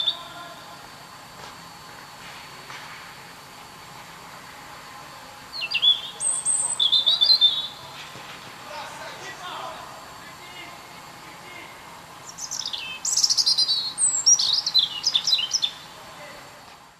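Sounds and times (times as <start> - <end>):
European robin Erithacus rubecula song: 0.0 - 0.9, 5.5 - 8.0, 8.7 - 16.3.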